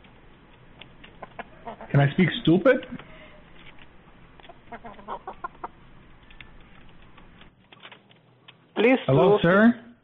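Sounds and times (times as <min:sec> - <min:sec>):
rooster clucking: 0:01.2 - 0:02.1, 0:04.4 - 0:05.9
speech: 0:01.7 - 0:03.1, 0:08.8 - 0:09.8.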